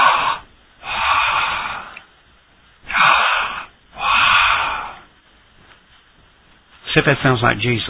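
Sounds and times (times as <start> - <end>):
person drawing slow heavy breaths: 0.0 - 2.1, 2.8 - 5.1
speech: 7.0 - 7.8.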